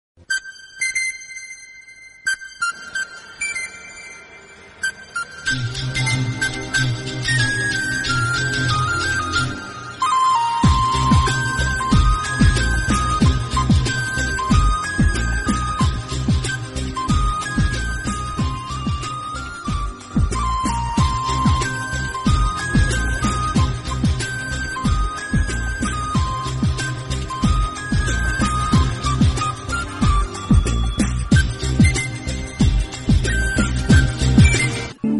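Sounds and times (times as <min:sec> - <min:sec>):
Indian Tamil flute playing: 0:00.2 - 0:35.1.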